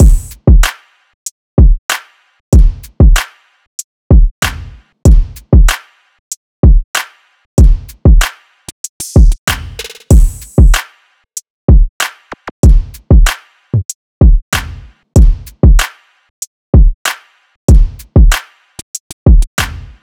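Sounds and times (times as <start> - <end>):
drum loop at 95 BPM: 0.0 - 0.7, 2.5 - 3.2, 4.1 - 5.8, 7.6 - 10.8, 11.7 - 15.9, 17.7 - 20.0.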